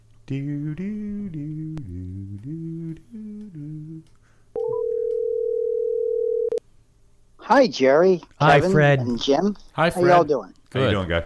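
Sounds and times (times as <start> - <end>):
speech: 0.3 - 1.0, 7.5 - 11.2
telephone dial tone: 4.6 - 6.6.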